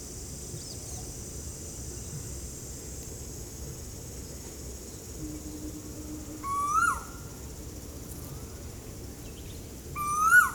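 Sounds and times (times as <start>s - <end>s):
high insect drone: 0.0s - 10.5s
low steady hum: 4.9s - 10.0s
Asian koel Eudynamys scolopaceus rising whistle in Ezhimala, Kannur, Kerala: 6.3s - 7.2s.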